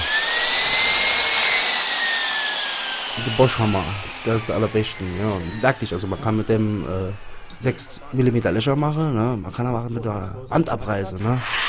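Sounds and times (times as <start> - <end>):
sliding miter saw motor whining at high speed: 0.0 - 8.6
speech: 3.2 - 11.6.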